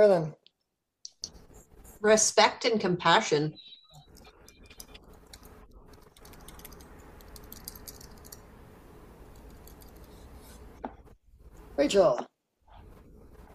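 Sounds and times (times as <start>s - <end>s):
speech: 0.0s - 0.4s, 2.0s - 3.7s, 11.8s - 12.3s
typing on a computer keyboard: 4.1s - 8.4s, 9.3s - 10.2s.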